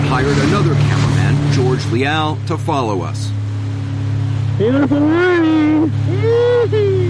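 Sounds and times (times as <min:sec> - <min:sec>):
two jet skis leaving the harbor in Nazaré: 0:00.0 - 0:07.0
speech: 0:00.2 - 0:03.4, 0:04.6 - 0:07.0
person calling out over motor noise: 0:04.6 - 0:07.0.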